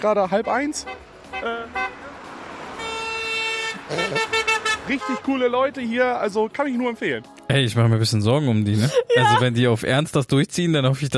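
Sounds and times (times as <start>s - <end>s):
speech: 0.0s - 1.8s, 3.9s - 11.1s
car horns honking at roadside: 0.0s - 5.9s
faint road hum: 0.0s - 7.5s
laughter: 3.9s - 4.4s, 8.7s - 9.6s.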